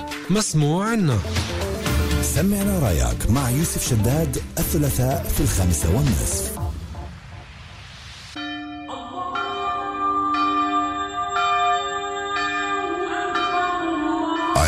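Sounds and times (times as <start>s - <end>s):
speech: 0.3s - 1.6s, 2.2s - 6.6s
church bells ringing: 8.4s - 14.6s.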